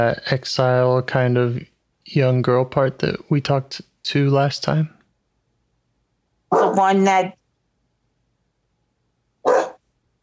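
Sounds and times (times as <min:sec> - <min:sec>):
speech: 0:00.0 - 0:05.0, 0:06.6 - 0:07.4
single sharp dog bark: 0:06.5 - 0:06.9, 0:09.4 - 0:09.8.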